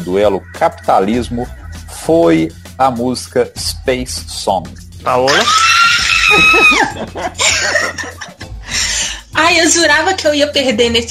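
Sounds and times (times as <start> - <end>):
speech: 0.1 - 5.7, 6.3 - 8.4, 9.4 - 11.0
laughter: 5.2 - 8.7
woman screaming in celebration: 5.3 - 7.1.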